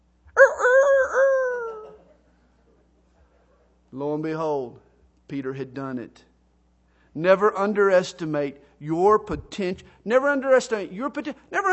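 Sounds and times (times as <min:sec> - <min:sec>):
rooster crowing: 0:00.4 - 0:02.0
speech: 0:04.0 - 0:06.3, 0:07.2 - 0:11.7.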